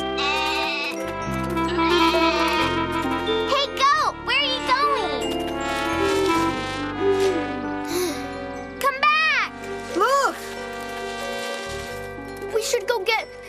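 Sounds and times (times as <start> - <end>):
bright jingling music: 0.0 - 13.4
hungry goat bleating: 0.2 - 1.0, 1.7 - 2.8.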